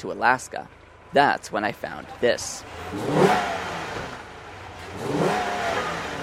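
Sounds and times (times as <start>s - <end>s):
speech: 0.0s - 3.6s
black 340-horsepower V8 muscle car engine revving: 2.6s - 6.2s.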